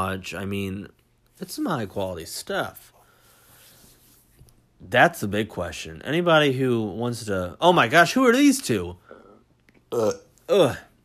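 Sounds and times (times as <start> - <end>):
speech: 0.1 - 3.0, 4.8 - 9.0, 9.9 - 10.9
person burping loudly: 9.9 - 11.0.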